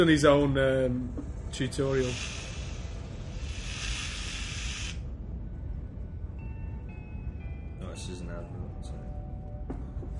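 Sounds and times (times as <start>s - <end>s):
speech: 0.0s - 2.4s
quiet low rumble of noise: 0.0s - 10.1s
aerosol can spraying: 2.0s - 5.0s.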